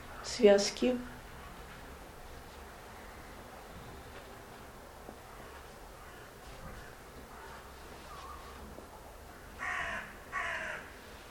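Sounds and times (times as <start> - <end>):
steady low hum: 0.0 - 11.2
speech: 0.4 - 1.2
raven cawing and croaking: 5.9 - 7.5, 9.3 - 11.0.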